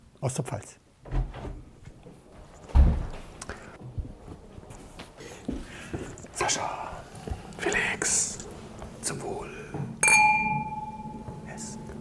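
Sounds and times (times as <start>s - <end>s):
speech: 0.2s - 1.2s, 6.5s - 6.9s, 7.6s - 10.2s
glasses clinking: 10.0s - 11.9s.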